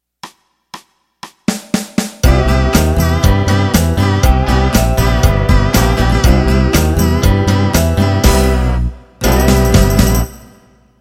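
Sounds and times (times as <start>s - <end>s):
modern country music intro: 2.2s - 10.6s.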